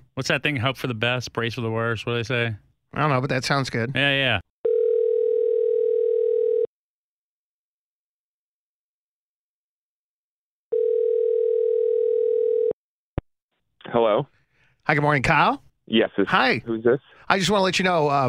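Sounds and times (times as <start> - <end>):
speech: 0.2 - 4.5, 13.8 - 18.2
ringback tone on a telephone line while placing a call: 4.6 - 6.7, 10.7 - 12.8.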